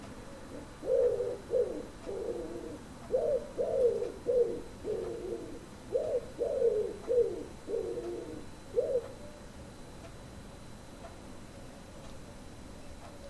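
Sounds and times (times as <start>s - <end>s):
common wood pigeon cooing: 0.0s - 9.5s.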